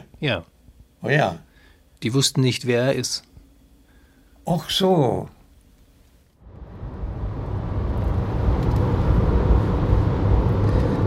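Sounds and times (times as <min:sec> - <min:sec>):
speech: 0:00.2 - 0:03.3, 0:04.5 - 0:05.4
car engine and road rumble cruising on a rural road: 0:06.4 - 0:11.0.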